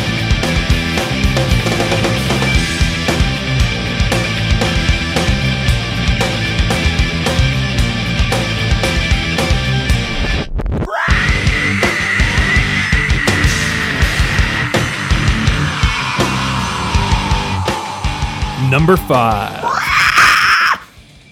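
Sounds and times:
loud dense rock track: 0.0 - 10.2, 11.5 - 19.8
person screaming over a rock band: 10.9 - 12.9, 18.6 - 20.9
speech: 18.9 - 19.6.

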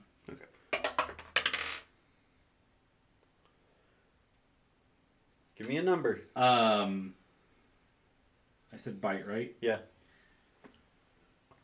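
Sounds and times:
dice rolling across a table: 0.7 - 1.9
speech: 5.6 - 7.2, 8.8 - 9.9.

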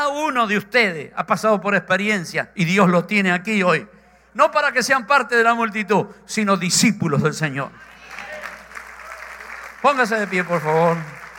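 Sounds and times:
speech: 0.3 - 7.9, 9.8 - 11.2
crowd of people clapping: 7.8 - 11.3.

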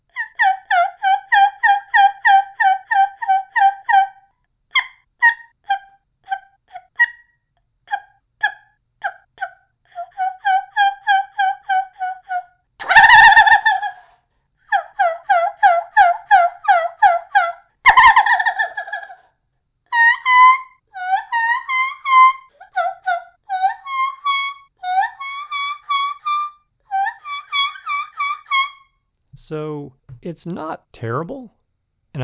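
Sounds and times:
homemade turkey call made from thin flexible plastic pill bottle yelping: 0.2 - 4.2, 7.9 - 14.0, 14.7 - 19.2, 19.9 - 29.0
speech: 30.3 - 31.6.

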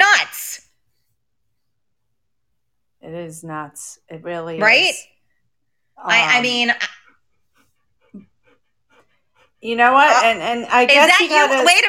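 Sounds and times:
speech: 3.3 - 5.2, 6.0 - 7.0, 9.6 - 11.8
dog panting: 6.3 - 11.8.

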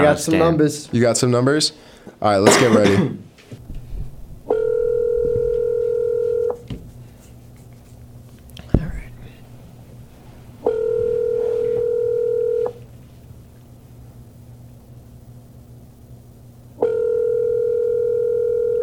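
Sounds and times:
speech: 0.1 - 3.3
ringback tones from an outgoing phone call: 4.5 - 6.6, 10.6 - 12.8, 16.8 - 18.8.

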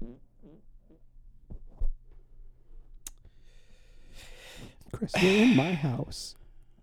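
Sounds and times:
fart into a microphone: 0.0 - 1.7
speech: 5.0 - 6.4.

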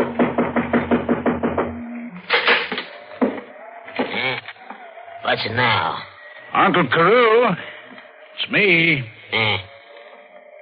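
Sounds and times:
knocking on a door: 0.0 - 2.0
heavy thumps: 0.0 - 4.8
speech: 5.3 - 7.7, 8.4 - 9.7.

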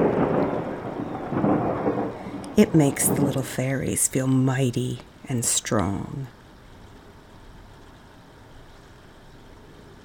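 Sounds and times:
low rumbling thunder in a thunderstorm: 0.0 - 3.7
dense wash of falling rain in a thunderstorm: 0.0 - 10.0
speech: 2.6 - 6.4.

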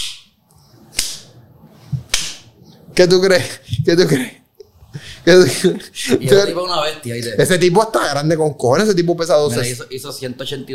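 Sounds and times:
hard sharp slaps during football practice: 0.0 - 0.3, 0.9 - 1.3, 2.0 - 2.5
speech: 3.0 - 4.4, 5.2 - 10.7.

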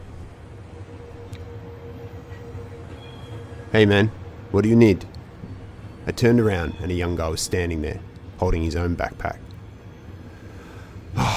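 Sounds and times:
faint metallic hum of a train: 0.0 - 11.3
train rumbling as it departs a station: 0.0 - 11.3
speech: 3.7 - 5.1, 6.1 - 9.4.

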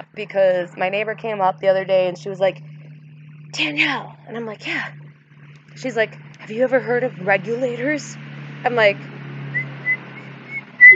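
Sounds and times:
speech: 0.2 - 2.7, 3.5 - 5.0, 5.8 - 9.1
person whistling a tune: 9.6 - 10.9.

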